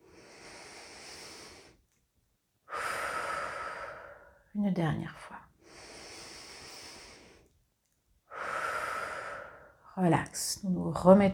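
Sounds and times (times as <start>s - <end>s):
slow deliberate breathing during a relaxation exercise: 0.0s - 2.0s, 2.7s - 4.5s, 5.6s - 7.6s, 8.3s - 9.9s
speech: 4.6s - 5.5s, 10.0s - 11.3s.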